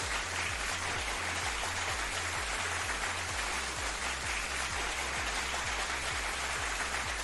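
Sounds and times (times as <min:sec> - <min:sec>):
audience applause: 0:00.0 - 0:07.2.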